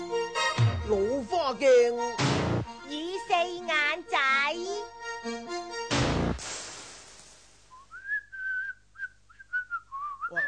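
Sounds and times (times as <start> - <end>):
music: 0.0 - 6.4
speech: 0.9 - 2.2
loud burst of noise: 6.0 - 7.8
person whistling a short bright tune: 7.8 - 10.4.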